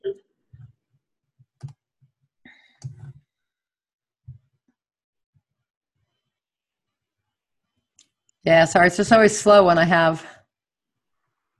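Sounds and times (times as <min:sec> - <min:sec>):
computer mouse clicking: 0:01.6 - 0:01.8
speech: 0:08.5 - 0:10.3.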